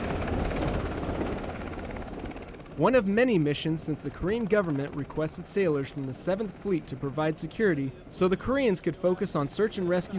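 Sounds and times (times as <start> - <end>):
helicopter rotor and engine roar taking off from ship deck: 0.0 - 10.1
speech: 2.8 - 10.1.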